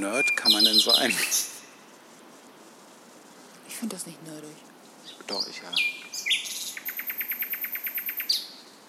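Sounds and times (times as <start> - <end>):
speech: 0.0 - 1.5, 3.8 - 6.0
bird chirping at night in city: 0.0 - 1.9, 5.0 - 8.8.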